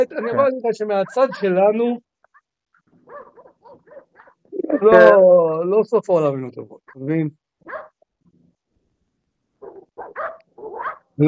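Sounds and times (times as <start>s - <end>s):
dog barking: 0.0s - 1.6s, 3.0s - 5.1s, 7.6s - 8.0s, 9.6s - 11.1s
speech: 0.0s - 2.1s, 4.6s - 7.9s, 10.0s - 11.2s.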